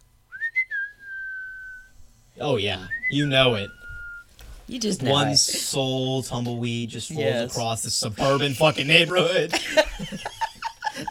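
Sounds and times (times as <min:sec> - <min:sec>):
whistled western showdown tune: 0:00.3 - 0:01.9, 0:02.9 - 0:04.3
speech: 0:02.4 - 0:03.8, 0:04.7 - 0:10.3
laughter: 0:08.2 - 0:11.1.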